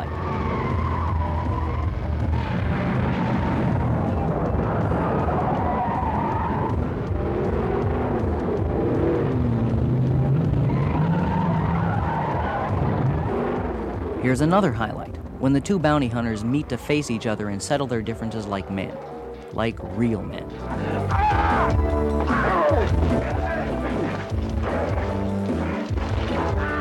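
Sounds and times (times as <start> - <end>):
car engines revving in a TV action car chase: 0.0 - 26.7
tires squealing in long skids during a car chase: 0.0 - 26.7
speech: 14.3 - 23.5.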